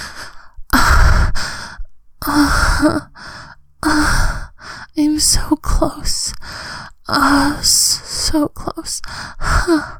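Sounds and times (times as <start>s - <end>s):
breathy voice gasping, whimpering and panting: 0.0s - 4.9s, 9.0s - 9.9s
speech: 2.8s - 3.3s, 5.2s - 9.9s.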